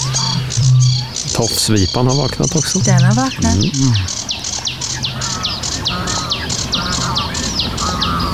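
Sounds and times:
faint hum: 0.0s - 4.2s
sedge warbler singing: 0.0s - 8.3s
speech: 1.4s - 4.3s.

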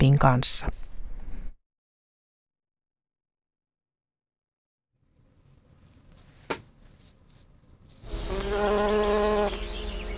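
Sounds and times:
speech: 0.0s - 0.9s
faint rustling: 5.0s - 8.5s
honeybees buzzing: 7.8s - 10.1s.

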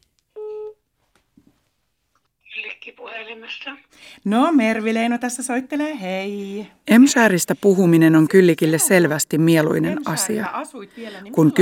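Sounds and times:
steady electronic tone of a phone call being placed: 0.4s - 0.8s
speech: 2.9s - 11.5s.

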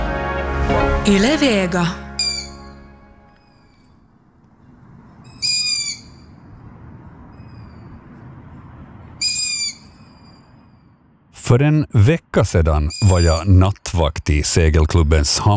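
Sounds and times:
speech: 1.0s - 2.0s, 11.5s - 15.5s
bird calling to its companions at night at a sailing club harbour: 2.2s - 2.7s, 5.3s - 6.3s, 9.2s - 10.4s.

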